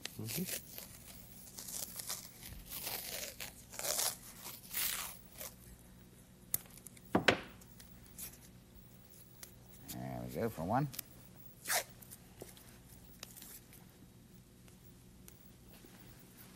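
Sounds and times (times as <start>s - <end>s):
adhesive tape being torn and wrapped around a clothing sleeve: 0.0s - 5.6s, 11.6s - 11.9s
speech: 0.2s - 0.9s, 10.4s - 11.0s.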